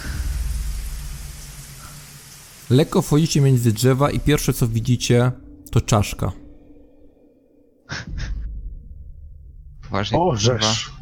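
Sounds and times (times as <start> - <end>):
steady rain pouring down: 0.0 - 5.3
speech: 2.7 - 6.4, 9.9 - 10.9.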